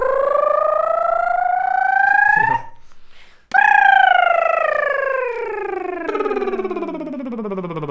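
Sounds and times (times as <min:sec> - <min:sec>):
voice imitating a UFO in a voice exercise: 0:00.0 - 0:02.8, 0:03.5 - 0:07.9.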